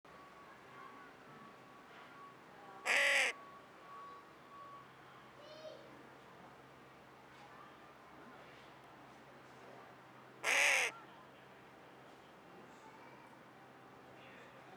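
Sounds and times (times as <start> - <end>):
Corvus corone carrion crow cawing harshly: 2.9 - 3.3, 10.4 - 10.9.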